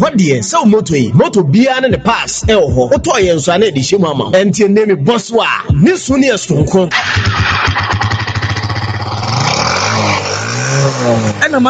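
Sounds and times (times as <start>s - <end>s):
speech: 0.1s - 8.0s, 10.9s - 11.6s
motorcycle engine starting and idling: 6.9s - 11.6s.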